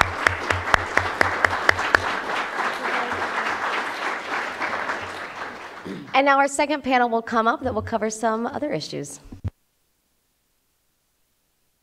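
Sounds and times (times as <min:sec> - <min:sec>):
audience applause: 0:00.0 - 0:06.1
sharp claps: 0:00.0 - 0:06.1
speech: 0:06.2 - 0:09.4.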